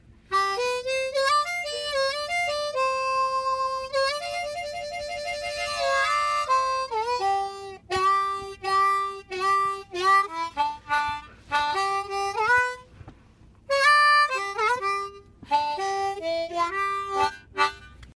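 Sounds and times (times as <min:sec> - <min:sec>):
harmonica riff ringtone: 0:00.0 - 0:18.1.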